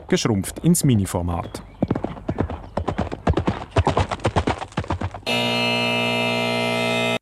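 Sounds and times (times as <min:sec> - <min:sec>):
horse hooves galloping: 0:00.0 - 0:05.3
speech: 0:00.1 - 0:01.7
harsh continuous buzzer tone: 0:05.3 - 0:07.2.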